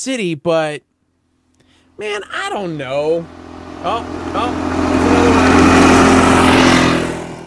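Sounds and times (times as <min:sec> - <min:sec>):
speech: 0:00.0 - 0:00.9, 0:02.0 - 0:05.2
motor vehicle revving and overtaking: 0:01.9 - 0:07.4.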